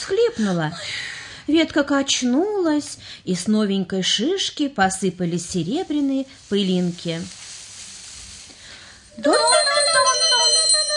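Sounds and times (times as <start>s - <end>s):
speech: 0.1s - 7.4s, 9.2s - 9.6s
small bells jingling: 8.8s - 10.9s.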